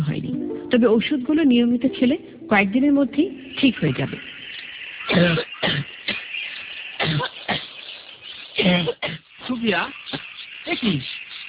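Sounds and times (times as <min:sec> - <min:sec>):
speech: 0:00.7 - 0:04.4, 0:05.1 - 0:05.5, 0:09.6 - 0:10.0, 0:10.8 - 0:11.1
hoarse coughs from someone ill with a fever: 0:05.0 - 0:06.4, 0:07.0 - 0:07.9, 0:08.6 - 0:09.4.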